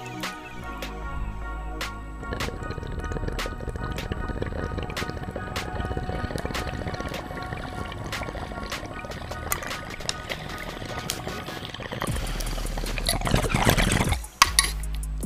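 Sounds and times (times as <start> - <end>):
water bubbling through a bong during a bong rip: 0.3 - 15.1.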